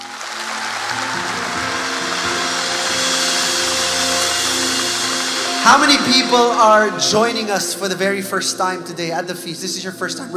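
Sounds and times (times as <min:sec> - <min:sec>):
large audience applauding: 0:00.0 - 0:07.6
speech: 0:05.6 - 0:10.3.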